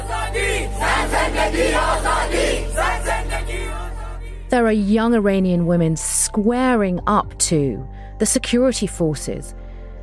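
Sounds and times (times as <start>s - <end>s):
large protest crowd chanting slogans: 0.0s - 4.3s
speech: 4.5s - 9.6s.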